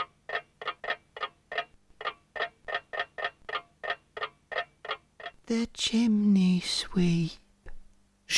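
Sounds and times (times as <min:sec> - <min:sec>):
alarm clock ticking in a kitchen: 0:00.0 - 0:05.4
speech: 0:05.5 - 0:07.4.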